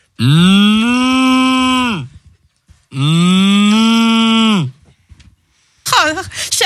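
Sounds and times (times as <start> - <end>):
speech: 0.2 - 0.5
cow mooing in a field: 0.2 - 2.1, 3.0 - 4.7.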